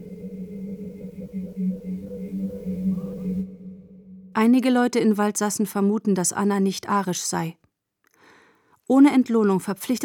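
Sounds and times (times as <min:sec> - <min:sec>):
hiss of deteriorating old cassette tape: 0:00.0 - 0:04.4
thin high-pitched whistle on degraded cassette tape: 0:00.0 - 0:04.7
low drone: 0:00.0 - 0:05.0
speech: 0:04.4 - 0:07.6, 0:08.9 - 0:10.0.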